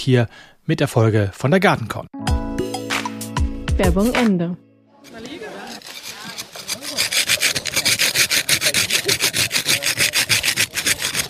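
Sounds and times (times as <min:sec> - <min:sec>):
speech: 0:00.0 - 0:02.4, 0:03.8 - 0:05.3
rasping strokes working the surface of a cement, sand and soil planter mix in a workshop: 0:05.0 - 0:11.2.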